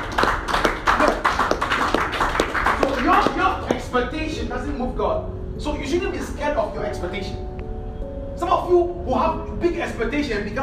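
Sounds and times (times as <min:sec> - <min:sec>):
crowd clapping in a steady rhythm: 0:00.0 - 0:03.9
speech: 0:04.6 - 0:07.5, 0:08.4 - 0:10.6.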